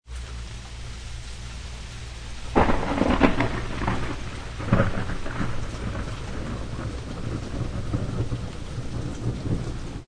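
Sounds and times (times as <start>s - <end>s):
thunderstorm: 2.5s - 10.0s.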